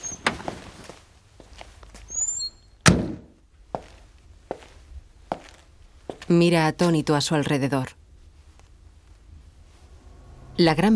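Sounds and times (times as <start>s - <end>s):
car door opening and shutting as driver gets out: 0.0s - 0.6s
footsteps on pavement: 0.3s - 2.1s, 3.7s - 6.3s
speech: 6.3s - 8.0s, 10.6s - 10.9s.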